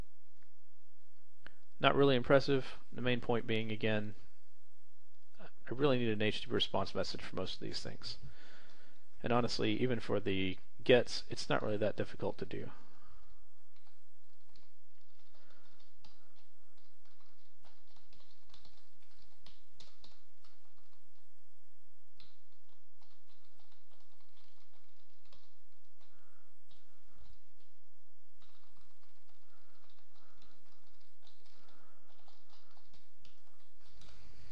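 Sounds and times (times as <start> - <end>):
speech: 1.8 - 4.2, 5.7 - 8.3, 9.2 - 12.8
typing on a computer keyboard while writing code: 13.7 - 21.2, 22.2 - 27.7, 28.4 - 34.2.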